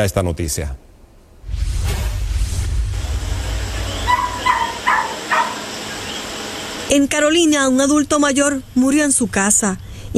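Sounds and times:
speech: 0:00.0 - 0:00.9, 0:06.9 - 0:10.1
low rumbling noise: 0:00.0 - 0:10.1
dogs whimpering and yelping: 0:04.0 - 0:06.2.

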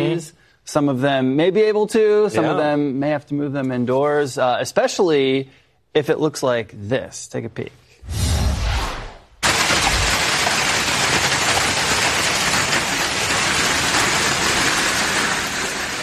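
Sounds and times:
speech: 0:00.2 - 0:08.3
hail pelting a car: 0:09.4 - 0:16.0.

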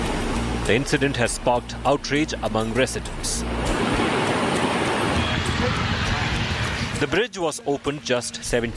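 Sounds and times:
swollen river rushing in spate after rainfall: 0:00.0 - 0:08.2
speech: 0:00.7 - 0:03.8, 0:07.0 - 0:08.7.

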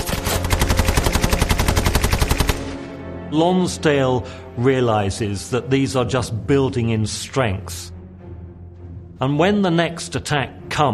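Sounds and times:
Bren light machine gun firing from a window: 0:00.0 - 0:02.8
speech: 0:03.3 - 0:08.0, 0:09.2 - 0:10.9.

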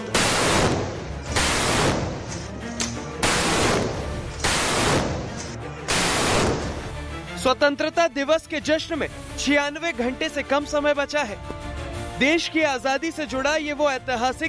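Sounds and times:
105 mm light field guns firing a salute: 0:00.1 - 0:02.5, 0:03.2 - 0:06.9
speech: 0:07.5 - 0:11.5, 0:12.2 - 0:14.4.

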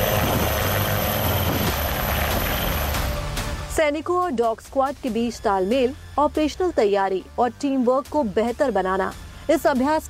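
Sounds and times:
army Dhruv military helicopter rotor roaring: 0:00.0 - 0:03.5
helicopter engine whine: 0:00.0 - 0:03.8
speech: 0:03.8 - 0:10.0.

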